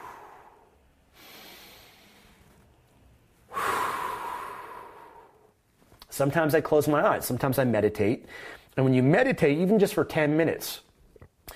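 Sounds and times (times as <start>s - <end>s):
deep breath in and exhale while sitting calmly: 0.0s - 2.6s, 3.5s - 5.5s
speech: 6.2s - 10.9s.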